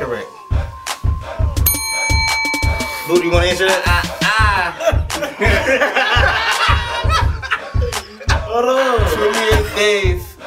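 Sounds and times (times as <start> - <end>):
quiz answer bell ringing: 1.7 - 4.3
speech: 3.1 - 6.1, 8.6 - 10.2
laughter: 3.6 - 10.1.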